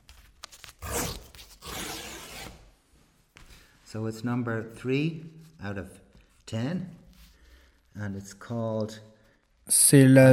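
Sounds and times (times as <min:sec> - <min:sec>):
excess paper ripping from the margins of a print: 0:00.2 - 0:02.7
speech: 0:03.9 - 0:07.0, 0:08.0 - 0:09.1, 0:09.7 - 0:10.3.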